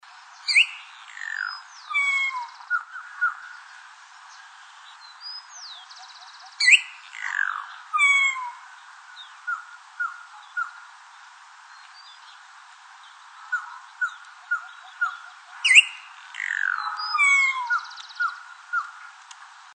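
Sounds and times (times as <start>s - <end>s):
boyero negro calling: 0.5s - 3.6s, 5.3s - 8.6s, 13.4s - 19.1s.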